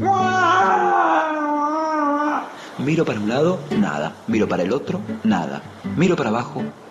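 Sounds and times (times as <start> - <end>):
high-pitched wailing cry: 0.0 - 2.6
speech: 2.8 - 6.8.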